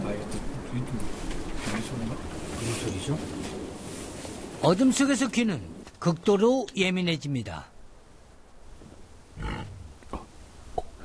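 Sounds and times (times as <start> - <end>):
faint outdoor wind: 0.0 - 11.0
speech: 1.8 - 3.6, 4.6 - 7.7
wild boar grunting: 9.4 - 10.3.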